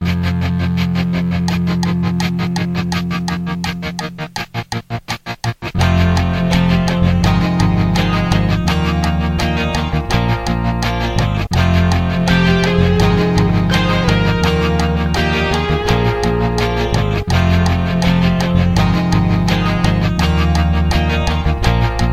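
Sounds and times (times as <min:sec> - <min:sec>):
drums backing track: 0:00.1 - 0:22.1.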